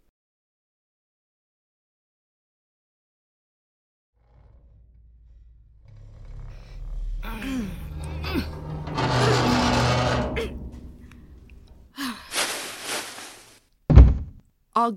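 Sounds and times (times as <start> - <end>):
heavy elevator doors pulled open by hand: 5.9 - 11.9
person gasping and breathing with effort: 11.9 - 12.5
sharp thud: 13.9 - 14.4.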